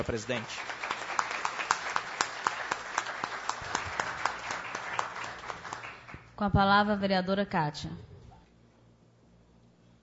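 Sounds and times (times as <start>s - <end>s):
speech: 0.0s - 0.8s, 6.4s - 8.1s
audience applause for honorees: 0.0s - 6.2s.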